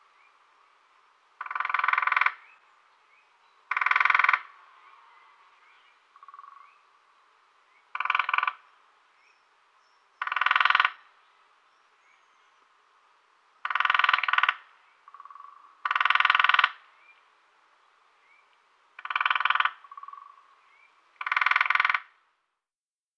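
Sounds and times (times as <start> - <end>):
Lesser spotted woodpecker drumming in short rapid rolls: 1.4 - 2.5, 3.7 - 4.6, 6.2 - 6.6, 7.9 - 8.6, 10.2 - 11.0, 13.6 - 16.8, 19.0 - 20.5, 21.2 - 22.1.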